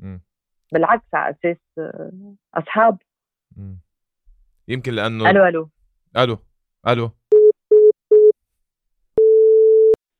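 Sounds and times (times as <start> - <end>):
speech: 0.0 - 3.8, 4.7 - 7.2
telephone beeps of a disconnect signal after a call dropped: 9.2 - 10.0.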